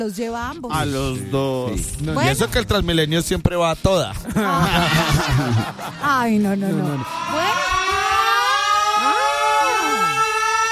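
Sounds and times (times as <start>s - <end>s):
speech: 0.0s - 8.0s
laughter: 4.2s - 9.2s
ambulance siren wailing: 6.7s - 10.7s.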